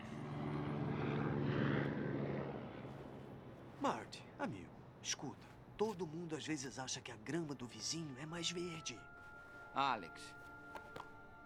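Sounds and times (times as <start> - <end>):
helicopter engine and rotor droning: 0.0 - 5.1
speech: 3.8 - 9.2, 9.8 - 10.5.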